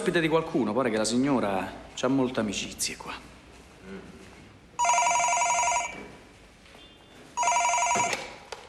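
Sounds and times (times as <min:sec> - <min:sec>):
speech: 0:00.0 - 0:03.3
telephone ringing with electronic trilling tone: 0:04.8 - 0:06.1, 0:07.4 - 0:08.4.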